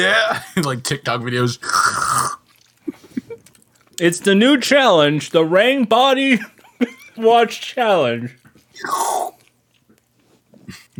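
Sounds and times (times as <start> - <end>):
speech: 0.0 - 2.0, 4.0 - 9.1
person imitating wet slurping of body wash in a shower: 1.6 - 2.5, 8.7 - 9.4.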